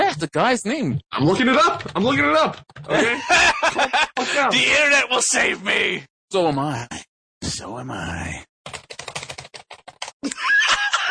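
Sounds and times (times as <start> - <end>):
speech: 0.2 - 9.2
people typing on computer keyboards: 1.5 - 3.0, 8.7 - 10.2
laughter: 2.9 - 4.6, 10.2 - 11.0.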